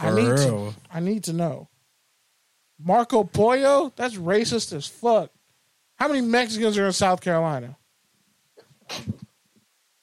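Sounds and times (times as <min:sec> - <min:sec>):
speech: 0:00.0 - 0:01.7, 0:02.8 - 0:05.4, 0:06.0 - 0:07.8, 0:08.9 - 0:09.2
sneeze: 0:08.8 - 0:09.3.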